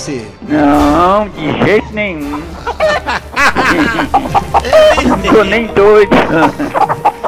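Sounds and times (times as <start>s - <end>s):
speech: 0.0s - 6.9s
laughter: 1.5s - 7.2s
small flock of chickens clucking: 2.2s - 7.2s.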